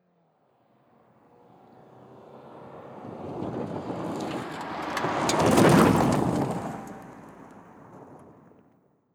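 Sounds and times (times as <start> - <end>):
Suzuki vehicle passing: 1.4 - 8.4.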